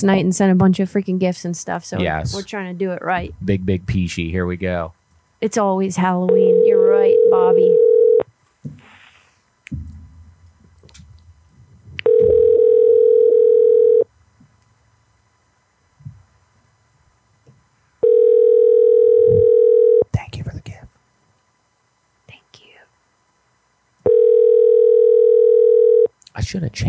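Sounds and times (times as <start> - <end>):
speech: 0.0 - 7.9, 26.6 - 26.8
outgoing phone call ringback tone: 6.3 - 8.2, 12.0 - 14.1, 18.0 - 20.0, 24.0 - 26.1.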